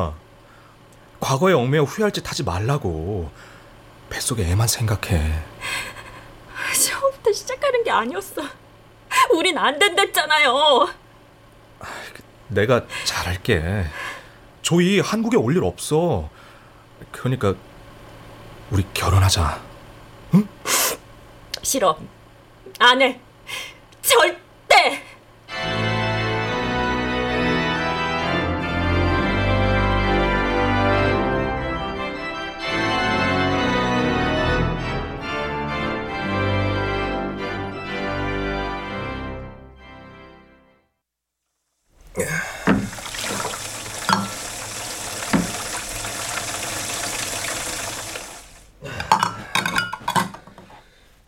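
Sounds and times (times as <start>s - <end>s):
speech: 0.0s - 0.2s, 1.2s - 5.9s, 7.2s - 8.6s, 9.3s - 11.0s, 11.8s - 14.1s, 14.7s - 16.4s, 17.1s - 17.7s, 18.7s - 19.7s, 20.3s - 20.8s, 21.6s - 22.2s, 22.8s - 24.4s
music: 25.5s - 41.0s
running water at a sink: 42.0s - 48.8s
dishes clattering and clinking in a sink: 49.0s - 50.6s.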